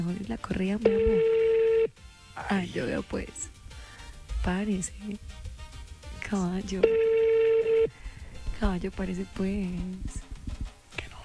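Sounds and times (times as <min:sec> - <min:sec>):
speech: 0:00.0 - 0:01.4, 0:02.4 - 0:03.5, 0:04.4 - 0:05.4, 0:06.3 - 0:07.1, 0:08.6 - 0:10.2
steady mid-pitched telephone line tone of an unanswered call: 0:00.0 - 0:02.5, 0:04.3 - 0:09.9.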